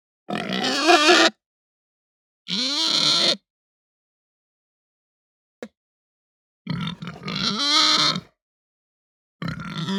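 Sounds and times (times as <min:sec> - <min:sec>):
Hampshire pig squealing: 0:00.3 - 0:01.4, 0:02.5 - 0:03.4, 0:06.7 - 0:08.3, 0:09.4 - 0:09.9.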